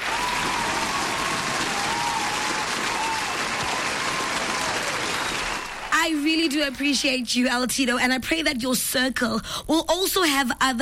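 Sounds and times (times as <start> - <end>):
sizable crowd applauding: 0.0 - 7.2
speech: 6.1 - 10.8.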